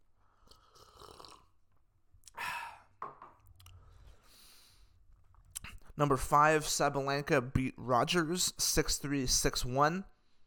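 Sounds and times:
person sipping coffee with a soft slurp: 0.4 - 1.6
breathy exhale: 3.8 - 5.0
speech: 6.0 - 10.1.

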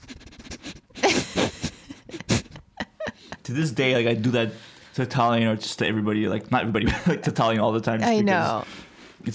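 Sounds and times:
voice imitating a boxer dog sniffing a face: 0.0 - 2.5
speech: 3.5 - 9.3.

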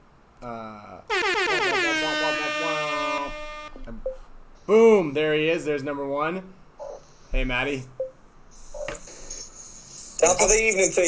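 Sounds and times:
speech: 0.4 - 1.8, 4.7 - 6.6, 7.3 - 7.9, 10.2 - 11.0
air horn blasts: 1.1 - 3.9.

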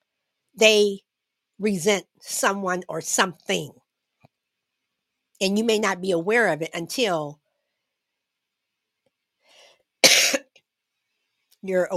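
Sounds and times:
speech: 0.6 - 1.0, 1.6 - 3.8, 5.4 - 7.4, 11.6 - 11.9
faint breath: 9.4 - 10.0
harsh cough: 10.0 - 10.6.

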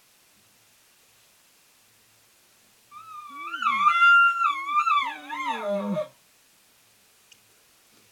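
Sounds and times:
imitated bull elk contact bugle: 2.9 - 6.1.

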